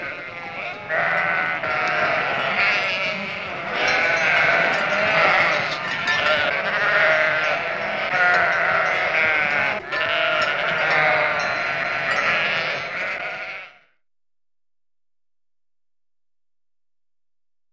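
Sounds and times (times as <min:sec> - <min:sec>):
sheep flock bleating: 0:00.0 - 0:13.9.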